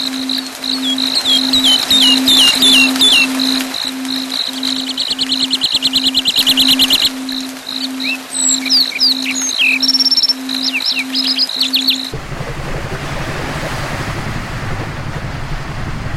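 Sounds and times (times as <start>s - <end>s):
continuous high tone: 0.0s - 12.2s
lark song with buzzy rattle, chirps, whistled slurs and trill: 0.0s - 12.2s
low hum: 0.0s - 16.1s.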